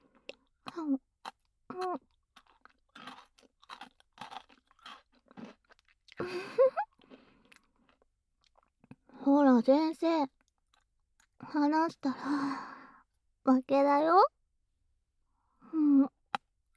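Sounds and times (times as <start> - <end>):
chewing and crunching food: 0.0 - 9.1, 10.3 - 11.5
speech: 0.8 - 1.0, 1.8 - 2.1, 9.3 - 10.4, 11.5 - 12.7, 13.5 - 14.3.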